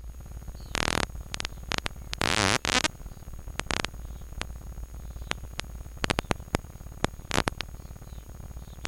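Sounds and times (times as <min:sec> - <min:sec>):
Harbour porpoise echolocation clicks while hunting fish: 0:00.0 - 0:08.8
steady low hum: 0:00.0 - 0:08.8.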